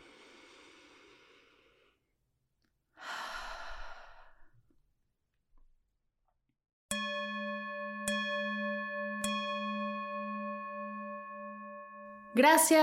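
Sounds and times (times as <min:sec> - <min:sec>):
deep breath and sigh during a mindfulness exercise: 0:00.0 - 0:02.0, 0:03.0 - 0:04.6
bowl-like bell ringing: 0:06.9 - 0:12.8
speech: 0:12.4 - 0:12.8.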